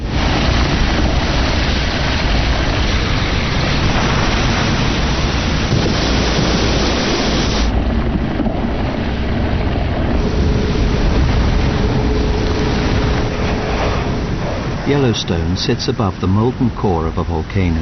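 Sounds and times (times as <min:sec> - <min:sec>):
geyser in Yellowstone erupting: 0:00.0 - 0:17.8
speech: 0:15.0 - 0:17.8.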